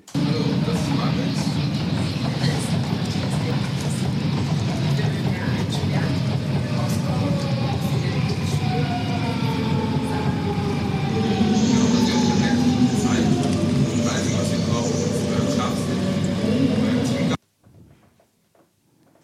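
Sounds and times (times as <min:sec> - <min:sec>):
train pulling in with a low rumble: 0:00.0 - 0:17.4
indistinct voices murmuring: 0:00.1 - 0:17.4.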